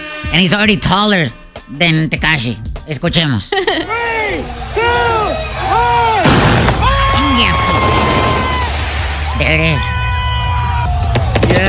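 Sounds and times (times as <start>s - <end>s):
speech: 0.3s - 5.9s
noisy crowd at a gender reveal party: 3.9s - 11.6s
fireworks whistling outdoors at a gender reveal party: 4.3s - 9.4s
fireworks cracking bangs outdoors at a gender reveal party: 5.6s - 9.3s, 11.1s - 11.6s.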